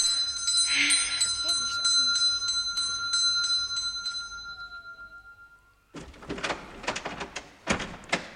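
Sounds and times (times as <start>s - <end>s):
house doorbell chime: 0.0s - 6.0s
clattering and shuffling noises: 5.9s - 8.3s.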